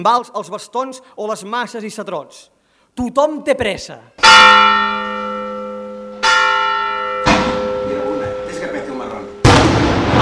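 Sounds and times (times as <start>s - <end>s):
speech: 0.0s - 5.1s
church bells ringing a festive peal: 4.2s - 9.6s.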